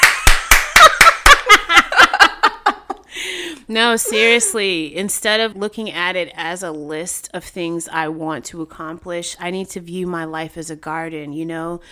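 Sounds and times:
hands clapping: 0.0 - 1.4
giggling laughter: 0.7 - 3.0, 4.1 - 4.5
speech: 3.7 - 11.8.

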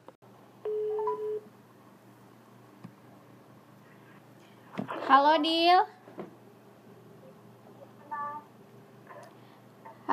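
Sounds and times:
phone call ringing tone: 0.7 - 1.5
speech: 5.1 - 6.0.

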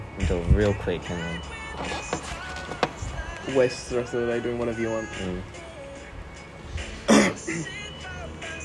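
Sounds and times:
speech: 0.2 - 2.3, 3.4 - 5.6, 7.5 - 7.8
person coughing with a throat-clearing rasp: 7.1 - 7.8.

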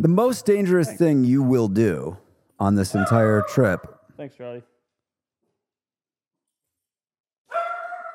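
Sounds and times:
speech: 0.0 - 4.7
dog barking: 7.5 - 8.1.

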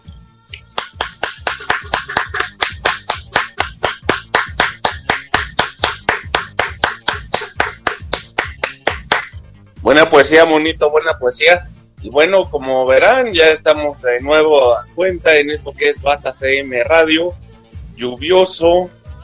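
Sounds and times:
steady evenly spaced hand claps: 0.5 - 9.4
speech: 9.9 - 17.4, 18.0 - 19.0.

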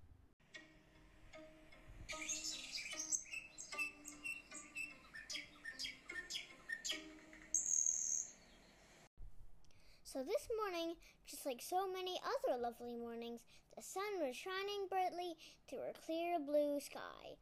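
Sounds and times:
thin steady high-pitched trill: 0.6 - 8.4
birds chirping and squawking: 2.1 - 8.6
speech: 10.2 - 17.4.

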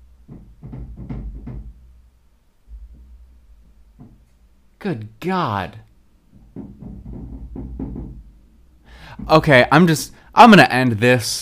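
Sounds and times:
heavy thumping footsteps of upstairs neighbors: 0.2 - 1.9, 2.7 - 4.5, 6.3 - 8.4, 9.0 - 9.8
speech: 4.8 - 5.8, 9.3 - 11.4.

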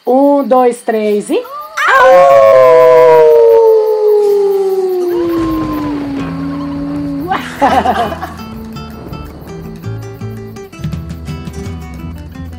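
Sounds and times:
speech: 0.1 - 3.2, 7.6 - 8.3
several people howling together imitating wolves: 1.4 - 9.7
laughter: 7.2 - 8.8.

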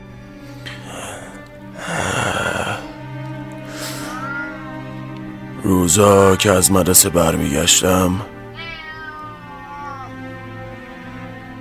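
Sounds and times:
cat meowing with a drawn-out wavering call: 3.6 - 6.6, 8.4 - 10.5
speech: 5.7 - 8.4.

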